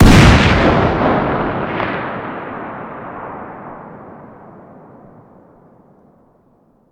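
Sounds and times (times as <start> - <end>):
distant 50 BMG rifle firing: 0.0 - 6.2.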